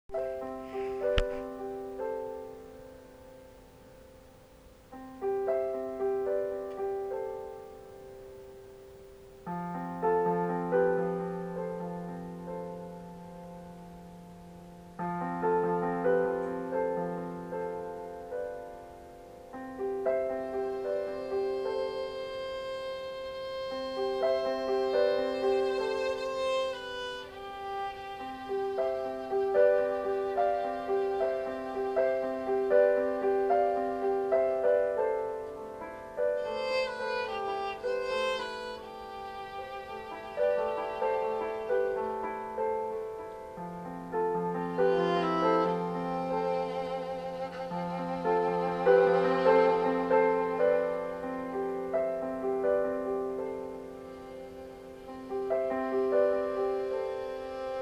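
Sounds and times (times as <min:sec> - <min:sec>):
piano improvisation: 0:00.1 - 0:57.7
violin improvisation: 0:00.4 - 0:02.2, 0:20.2 - 0:35.0, 0:36.2 - 0:42.7, 0:44.4 - 0:51.3, 0:53.6 - 0:57.7.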